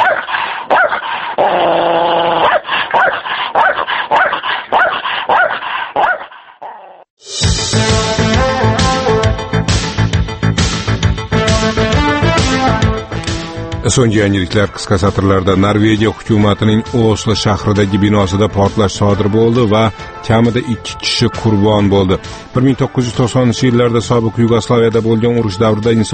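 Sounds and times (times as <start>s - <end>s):
stray dogs barking, yipping and whimpering: 0.0s - 7.0s
loud music: 7.2s - 16.1s
speech: 14.0s - 26.1s.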